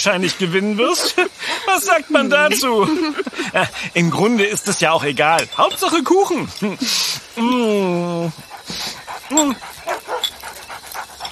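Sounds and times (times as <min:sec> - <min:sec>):
speech: 0:00.0 - 0:09.8
dog panting quickly: 0:00.8 - 0:01.6, 0:08.2 - 0:11.2
laughter: 0:00.8 - 0:03.8
dog begging for cake whining and whimpering: 0:08.5 - 0:11.2.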